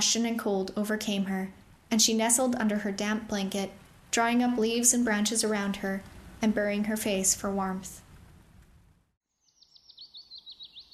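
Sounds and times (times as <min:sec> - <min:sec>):
speech: 0:00.0 - 0:08.0
faint hum: 0:00.0 - 0:09.1
bird twittering in quick high chirps: 0:09.4 - 0:10.9.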